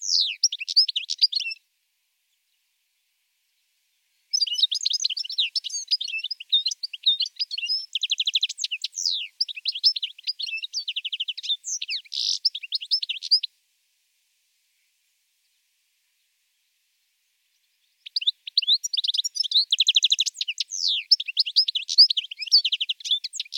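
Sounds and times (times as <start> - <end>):
European goldfinch singing liquid twitters and buzzy trills: 0.0 - 1.6, 4.3 - 13.5, 17.8 - 23.5.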